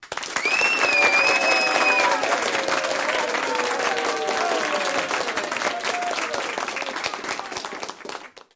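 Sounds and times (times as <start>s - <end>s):
large applause: 0.0s - 8.5s
large crowd cheering: 0.0s - 8.5s
whistling: 0.4s - 2.3s.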